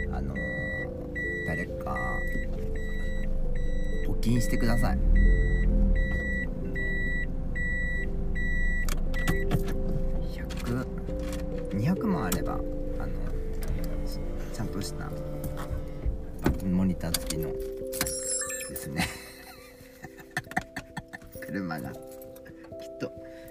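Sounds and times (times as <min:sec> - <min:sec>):
car reversing beep: 0:00.0 - 0:09.5
car engine humming while reversing into a house parking space: 0:00.0 - 0:22.8
speech: 0:01.5 - 0:02.4, 0:04.2 - 0:05.4, 0:11.8 - 0:12.8, 0:14.7 - 0:15.7, 0:16.6 - 0:18.0, 0:18.8 - 0:19.2, 0:21.5 - 0:22.1.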